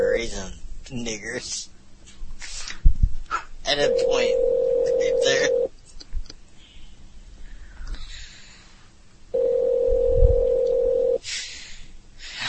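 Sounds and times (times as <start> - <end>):
speech: 0.0 - 1.7, 3.7 - 4.5, 5.2 - 5.6
buzzy phone line ringback tone: 3.8 - 5.7, 9.4 - 11.2.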